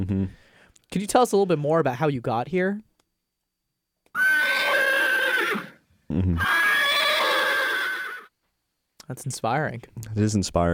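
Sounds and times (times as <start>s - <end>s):
speech: 0.0s - 2.9s, 6.1s - 6.7s, 9.1s - 10.7s
horse whinnying: 4.1s - 8.3s.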